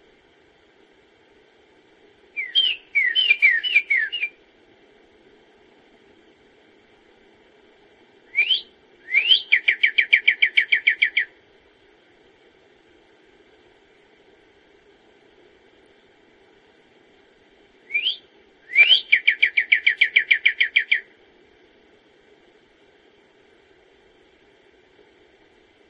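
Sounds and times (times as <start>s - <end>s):
songbird whistles and trill: 2.4s - 4.4s, 8.3s - 11.4s, 17.8s - 21.1s.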